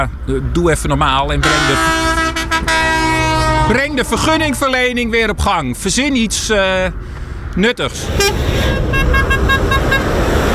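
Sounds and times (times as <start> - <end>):
speech: 0.0 - 2.7, 3.7 - 8.9
heavy continuous rumble of engines and traffic: 0.0 - 10.5
truck and car horns honking at a farmers' protest in the countryside: 1.4 - 5.0, 8.0 - 10.3.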